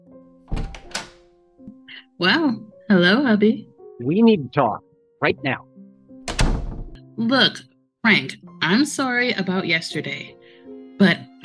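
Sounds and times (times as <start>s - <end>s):
speech: 2.2s - 5.7s, 7.2s - 10.4s, 11.0s - 11.3s
knocking at a hotel room door: 6.3s - 7.0s.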